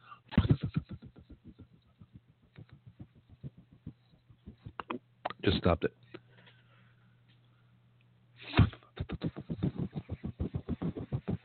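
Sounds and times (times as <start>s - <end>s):
fidget spinner whirring on a finger: 0.4s - 5.0s, 9.2s - 11.4s
speech: 5.5s - 6.1s.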